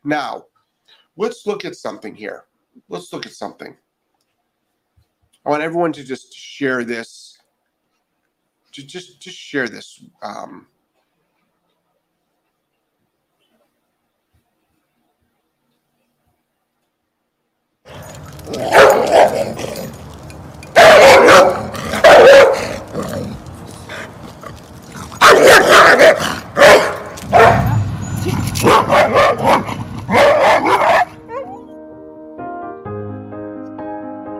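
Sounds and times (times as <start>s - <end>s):
speech: 0.0s - 3.8s, 5.4s - 7.2s, 8.8s - 10.7s, 17.9s - 19.8s
dog barking played from a video recording: 18.5s - 19.6s, 20.8s - 22.9s, 25.2s - 31.6s
soft musical tones: 31.2s - 34.3s.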